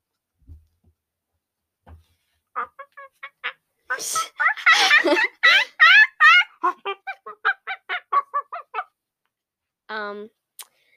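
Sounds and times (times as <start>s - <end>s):
person imitating a clucking chicken: 2.6s - 9.0s.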